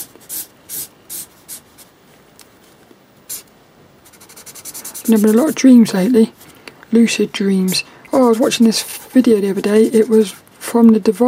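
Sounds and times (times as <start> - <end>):
pen scratching across paper while drawing: 0.0 - 1.9, 3.3 - 6.5, 7.6 - 10.4
speech: 5.1 - 11.2.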